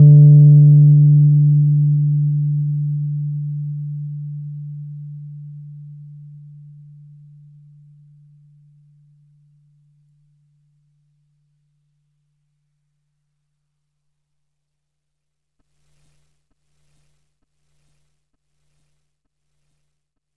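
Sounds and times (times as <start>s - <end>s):
Fender Rhodes Mark II electric piano D2 note: 0.0s - 4.2s.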